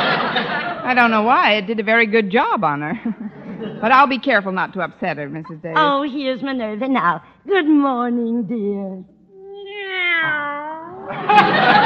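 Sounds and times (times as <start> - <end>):
laughter: 0.0 - 1.1, 2.9 - 4.2, 10.9 - 11.8
speech: 0.9 - 9.1, 11.1 - 11.8
cat meowing: 9.3 - 11.1.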